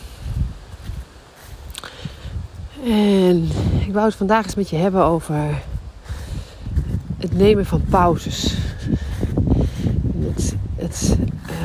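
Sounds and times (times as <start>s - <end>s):
wind rustling through leaves and ferns outdoors: 0.0s - 11.6s
speech: 2.8s - 5.7s, 7.3s - 8.8s, 10.3s - 11.2s
low thuds: 6.6s - 11.6s.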